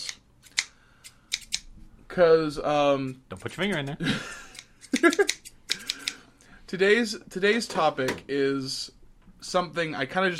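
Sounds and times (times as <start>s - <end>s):
scissors snipping: 0.0s - 1.7s, 4.5s - 6.2s
speech: 2.2s - 4.4s, 5.0s - 5.4s, 6.7s - 10.3s
laughter: 4.0s - 5.4s.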